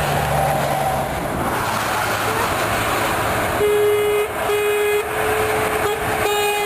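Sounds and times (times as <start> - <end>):
cars and trucks rolling past on a new road: 0.0 - 6.6
celebratory car horn toots: 3.6 - 6.6.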